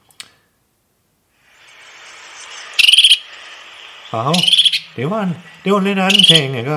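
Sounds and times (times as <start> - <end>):
faint hiss: 0.2 - 6.7
great tit singing in a garden: 2.8 - 3.3, 4.1 - 5.0, 5.8 - 6.6
speech: 4.1 - 6.7.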